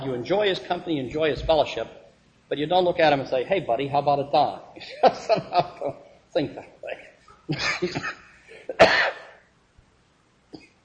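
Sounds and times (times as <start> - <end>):
speech: 0.0 - 9.2
laughter: 4.8 - 5.9, 7.5 - 8.3
person coughing from a sinus tickle: 7.5 - 9.4
harsh throat-clearing hack: 7.9 - 9.4.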